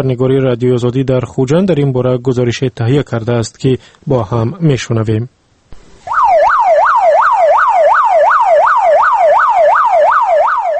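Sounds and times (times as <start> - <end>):
speech: 0.0 - 5.4
ambulance siren heading toward the hospital in Khujand Tajikistan: 6.1 - 10.7.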